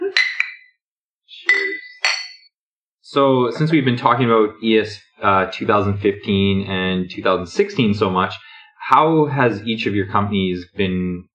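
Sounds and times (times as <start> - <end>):
glasses clinking in a toast: 1.5 - 2.5
speech: 3.1 - 11.3.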